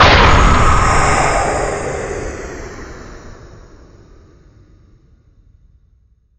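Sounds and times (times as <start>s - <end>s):
ambient psychedelic hit: 0.0s - 4.3s.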